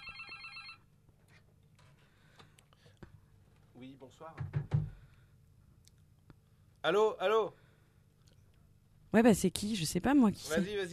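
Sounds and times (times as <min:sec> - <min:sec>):
telephone with a bright trilling electronic bell ringing: 0:00.0 - 0:00.9
low hum: 0:00.0 - 0:10.9
speech: 0:03.8 - 0:04.8, 0:06.8 - 0:07.6, 0:09.1 - 0:10.9.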